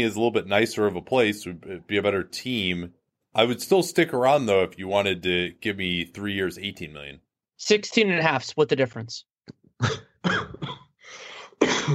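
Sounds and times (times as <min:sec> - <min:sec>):
speech: 0:00.0 - 0:11.9
person coughing harshly with echo: 0:09.8 - 0:11.9
raspy breath: 0:11.0 - 0:11.6.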